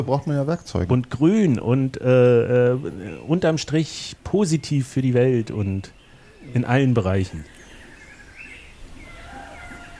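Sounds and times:
speech: 0.0 - 7.6
birds chirping: 0.0 - 9.9.

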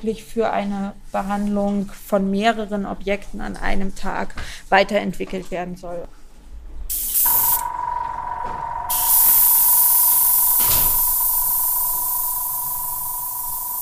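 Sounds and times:
speech: 0.0 - 6.2
constant mechanical hum: 0.0 - 13.8
spray gun spraying nanocellulose onto paper: 6.9 - 7.7, 8.9 - 13.8.

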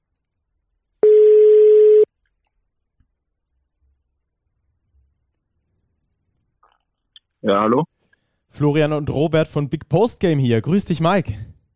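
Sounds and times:
outgoing call's telephone ringing tone: 1.0 - 2.1
speech: 7.4 - 7.9, 8.5 - 11.6.

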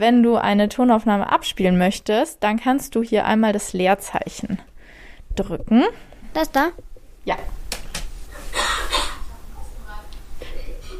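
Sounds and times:
speech: 0.0 - 4.7, 5.4 - 7.6
faint noise: 0.0 - 10.9
person coughing: 8.4 - 9.3, 10.4 - 10.9.

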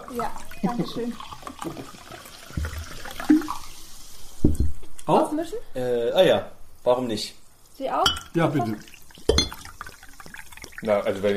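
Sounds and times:
water pouring into a glass of apple juice: 0.0 - 4.4, 8.1 - 11.3
speech: 0.1 - 2.3, 5.1 - 9.0, 10.8 - 11.3.

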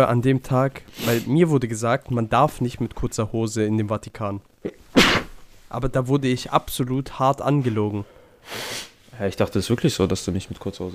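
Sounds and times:
speech: 0.0 - 4.8, 5.7 - 10.9
person sneezing: 1.0 - 1.3, 4.7 - 5.4.

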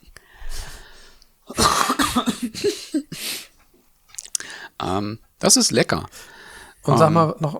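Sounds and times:
throaty breathing: 0.2 - 1.2, 4.3 - 4.8, 6.1 - 6.8
person coughing harshly: 1.5 - 3.4
speech: 5.0 - 7.5.

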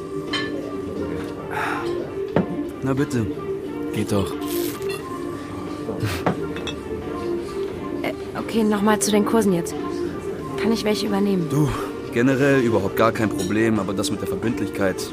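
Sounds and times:
busy room hum: 0.0 - 13.1
beer glasses clinking in a toast: 0.2 - 0.8, 6.2 - 7.0, 13.2 - 14.1
speech: 2.9 - 4.7, 5.9 - 6.7, 8.5 - 9.9, 10.6 - 15.1.

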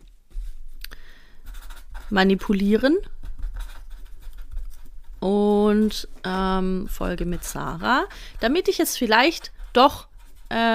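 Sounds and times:
pen scratching across an index card: 1.4 - 10.7
speech: 2.1 - 3.2, 5.2 - 10.7.

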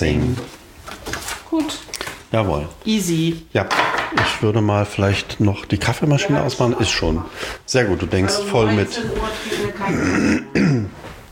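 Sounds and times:
speech: 0.0 - 0.6, 1.5 - 11.0
person with a lingering post-Covid cough clearing throat: 9.9 - 11.0.

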